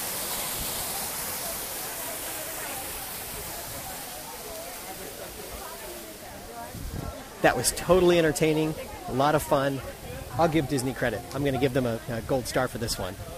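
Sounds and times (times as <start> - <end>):
waterfall rushing: 0.0 - 13.3
speech: 7.4 - 13.3.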